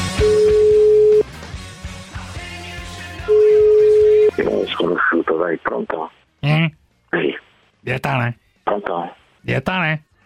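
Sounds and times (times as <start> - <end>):
telephone ringback tone while calling someone back: 0.2 - 1.2, 3.3 - 4.3
speech: 5.4 - 10.1.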